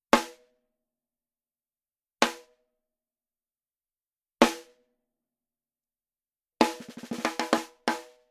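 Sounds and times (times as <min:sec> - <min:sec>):
dry snare drum rim shot: 0:06.6 - 0:08.1.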